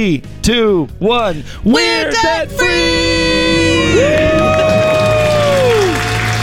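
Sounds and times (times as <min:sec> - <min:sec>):
speech: 0:00.0 - 0:04.9
small group cheering: 0:01.8 - 0:06.4
person screaming joyfully in celebration: 0:02.0 - 0:06.0
small group clapping: 0:02.5 - 0:06.4.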